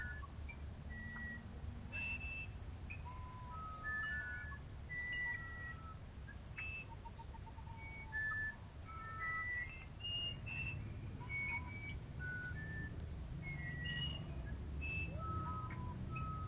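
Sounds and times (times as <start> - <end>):
constant low background noise: 0.0 - 16.4
musician wren singing clear whistles: 0.0 - 16.4.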